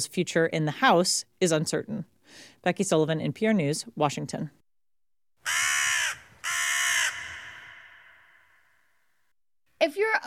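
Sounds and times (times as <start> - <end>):
speech: 0.0 - 4.6
bird cawing: 5.4 - 9.2.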